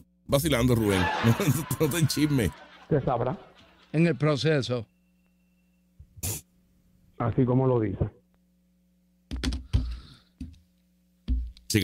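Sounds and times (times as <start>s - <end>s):
speech: 0.3s - 4.9s, 7.2s - 8.2s
laughter: 0.8s - 4.2s
pen tapping against a desk: 9.3s - 10.6s.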